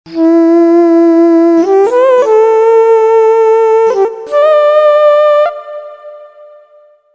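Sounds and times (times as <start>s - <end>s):
ethnic solo instrument: 0.1s - 7.1s.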